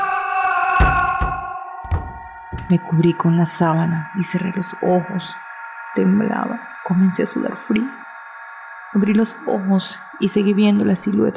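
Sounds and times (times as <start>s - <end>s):
steady sustained musical drone: 0.0s - 11.3s
wooden door slamming shut: 0.8s - 2.8s
speech: 2.7s - 5.4s, 6.0s - 8.0s, 8.9s - 11.3s.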